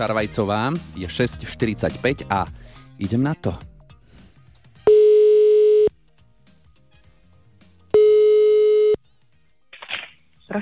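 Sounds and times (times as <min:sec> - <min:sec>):
speech: 0:00.0 - 0:03.7
telephone ringback tone: 0:04.9 - 0:05.9, 0:08.0 - 0:09.0.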